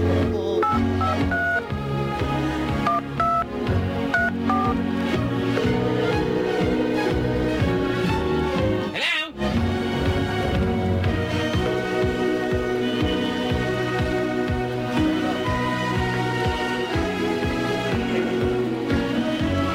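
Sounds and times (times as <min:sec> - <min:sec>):
loud busy music bed: 0:00.0 - 0:19.7
telephone keypad tones paging a beeper: 0:00.6 - 0:01.6, 0:02.9 - 0:03.5, 0:04.2 - 0:04.8.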